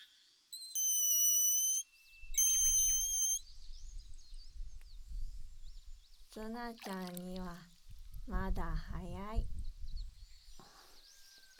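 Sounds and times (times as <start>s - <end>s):
grass whistle blown on a blade of foxtail grass: 0.0s - 3.5s
faint chirpy squeaks: 0.6s - 3.5s
speech: 6.3s - 7.7s, 8.3s - 9.6s.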